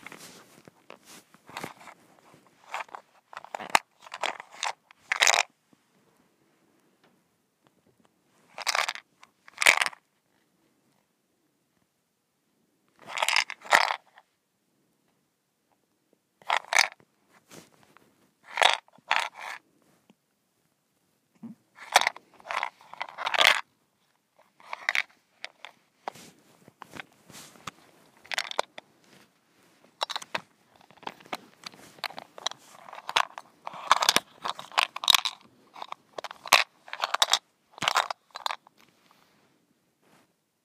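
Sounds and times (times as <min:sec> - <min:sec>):
mint shaker rattling: 0:02.6 - 0:05.5, 0:08.6 - 0:10.0, 0:13.1 - 0:14.2, 0:16.5 - 0:17.0, 0:18.4 - 0:19.6, 0:21.8 - 0:23.6, 0:24.4 - 0:28.8, 0:30.0 - 0:38.7.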